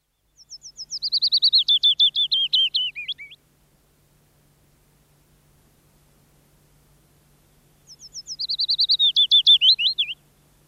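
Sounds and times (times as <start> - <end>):
willow warbler singing: 0.1 - 3.4, 7.9 - 10.2.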